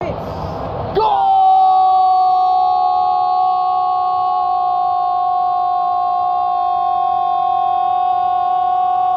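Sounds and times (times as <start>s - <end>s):
person screaming goal: 1.1s - 9.1s.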